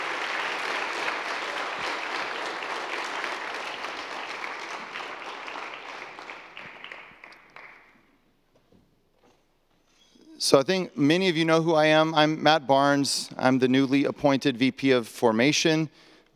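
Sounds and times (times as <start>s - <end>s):
room full of people applauding: 0.0s - 8.0s
speech: 10.4s - 16.3s.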